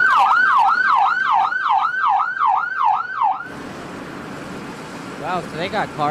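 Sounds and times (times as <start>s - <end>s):
tribal fire department rescue vehicle siren wailing: 0.0s - 3.5s
rough road noise: 0.0s - 6.0s.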